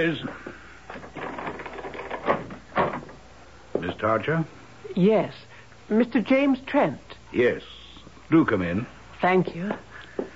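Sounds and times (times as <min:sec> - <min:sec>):
speech: 0:00.0 - 0:00.4, 0:04.0 - 0:09.9
front door latch and handle rattling: 0:00.9 - 0:03.2.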